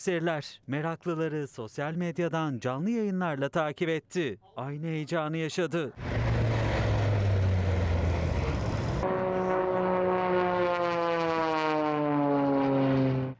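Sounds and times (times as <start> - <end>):
speech: 0.0 - 6.5
jet aircraft performing at an air show in Turkey: 6.0 - 13.3.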